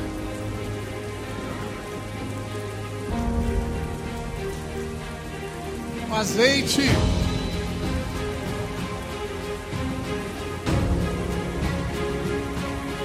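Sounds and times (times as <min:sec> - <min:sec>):
low sustained musical tone humming: 0:00.0 - 0:13.0
steady dense rainfall: 0:00.0 - 0:13.0
speech: 0:06.2 - 0:07.2.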